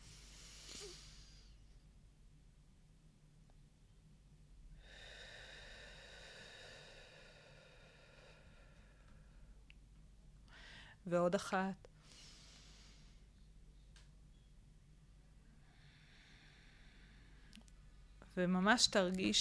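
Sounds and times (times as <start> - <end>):
slow deep breathing in and out: 4.7 - 9.6, 10.4 - 11.0, 12.0 - 13.9, 15.5 - 18.2
speech: 11.1 - 11.9, 18.4 - 19.3.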